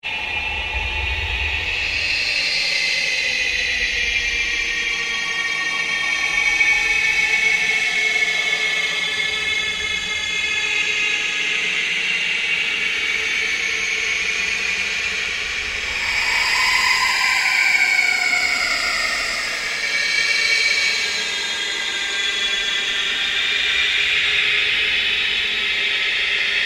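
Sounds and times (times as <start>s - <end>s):
slow scary ambient drone: 0.1s - 26.6s
slow ghostly chatter: 13.8s - 23.1s.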